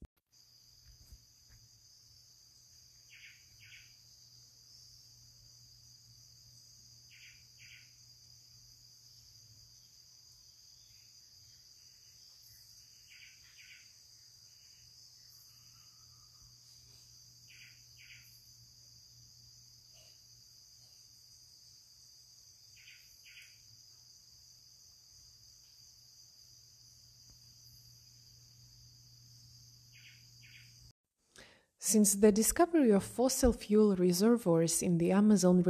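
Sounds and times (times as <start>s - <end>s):
rainforest insects droning shrilly at dawn: 0.3s - 35.6s
rainforest bird repeating short paired call notes: 29.9s - 30.8s
speech: 31.9s - 35.6s.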